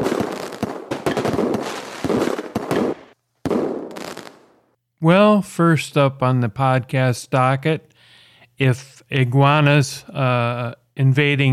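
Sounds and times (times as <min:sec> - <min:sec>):
fireworks exploding in sharp cracks and booming bursts: 0:00.0 - 0:04.6
speech: 0:05.0 - 0:07.9, 0:08.6 - 0:11.5.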